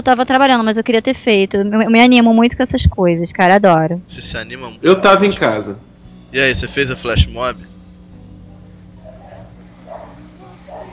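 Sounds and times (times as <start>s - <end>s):
speech: 0.0s - 7.7s
steady low electrical hum: 0.0s - 10.9s
dog barking in the background: 8.6s - 10.9s.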